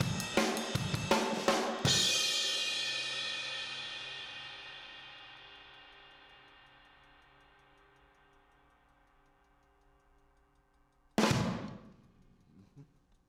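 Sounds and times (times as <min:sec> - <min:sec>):
outro drums: 0:00.0 - 0:06.8, 0:11.2 - 0:12.1.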